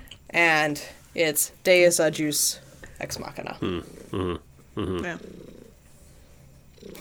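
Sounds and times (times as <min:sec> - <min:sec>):
speech: 0:00.3 - 0:05.5
cat purring loudly: 0:03.6 - 0:06.9.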